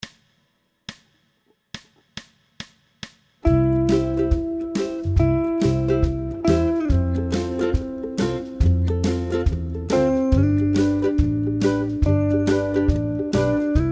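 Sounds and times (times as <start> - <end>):
single string: 3.5 - 13.9.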